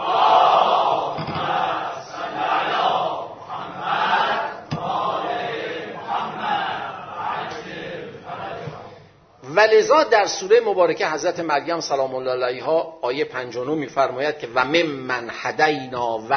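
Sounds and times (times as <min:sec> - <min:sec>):
large crowd reciting salawat in unison: 0:00.0 - 0:09.2
speech: 0:09.7 - 0:16.3.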